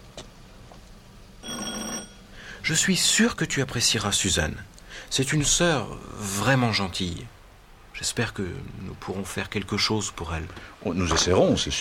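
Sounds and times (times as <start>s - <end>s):
doorbell ringing buzz at a home: 1.4s - 2.4s
speech: 2.7s - 7.4s, 8.0s - 11.7s.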